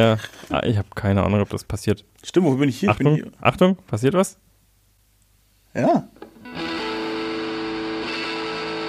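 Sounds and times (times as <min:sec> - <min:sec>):
speech: 0:00.0 - 0:04.4, 0:05.7 - 0:06.2
loud heavily distorted music with overdriven guitar-like tones: 0:06.4 - 0:08.8.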